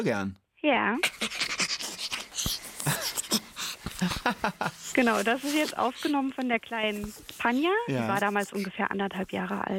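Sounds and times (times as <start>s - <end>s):
speech: 0.0s - 1.5s, 4.0s - 9.7s
young chimpanzee laughing while being tickled: 1.1s - 6.1s.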